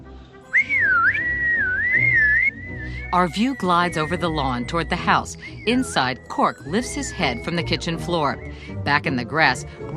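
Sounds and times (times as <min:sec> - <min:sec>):
person whistling to call a dog: 0:00.5 - 0:06.2, 0:06.9 - 0:08.8
speech: 0:03.1 - 0:09.9.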